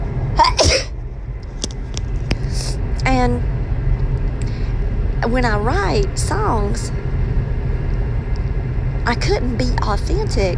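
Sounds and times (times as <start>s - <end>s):
low hum: 0.0s - 10.5s
person sneezing: 0.4s - 0.9s
speech: 3.2s - 3.6s, 5.2s - 7.0s, 9.0s - 10.5s.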